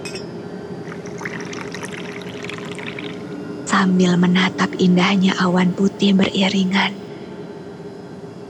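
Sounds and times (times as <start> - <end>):
low hum: 0.0 - 8.2
hot tea pouring into a cup: 0.8 - 3.5
speech: 3.8 - 7.0.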